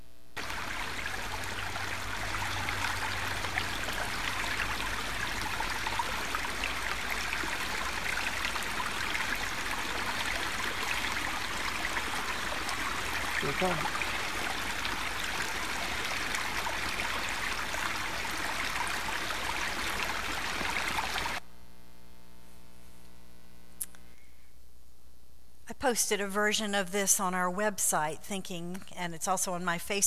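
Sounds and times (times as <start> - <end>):
brook burbling and rushing: 0.4 - 21.4
speech: 13.5 - 14.0, 25.8 - 30.0.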